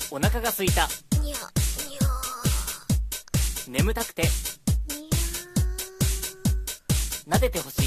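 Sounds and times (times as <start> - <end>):
speech: 0.1 - 1.6, 3.7 - 4.5, 7.3 - 7.8
human voice imitating a cat meowing: 1.2 - 3.0, 4.9 - 6.7.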